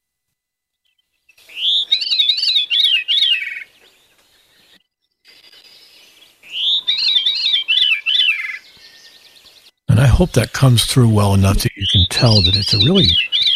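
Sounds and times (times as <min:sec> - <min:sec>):
veery singing: 0:00.8 - 0:13.5
speech: 0:10.2 - 0:13.3.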